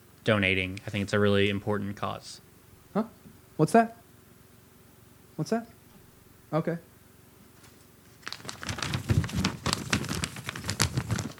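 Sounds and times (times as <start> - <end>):
speech: 0.2 - 4.0, 5.4 - 5.8, 6.5 - 6.9
paper rustling and crinkling: 7.6 - 11.3.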